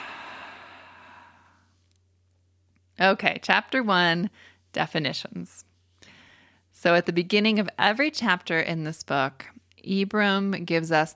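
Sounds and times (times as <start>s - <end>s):
slow soft exhaled breath during a mindfulness pause: 0.0s - 1.7s
speech: 3.0s - 5.7s, 6.8s - 11.1s.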